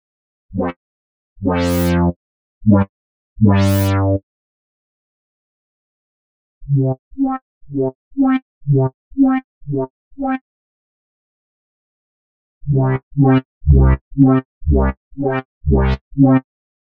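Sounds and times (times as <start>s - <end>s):
bass with octaver effect: 0.5s - 0.8s, 1.4s - 4.2s, 6.7s - 10.4s, 12.7s - 16.5s.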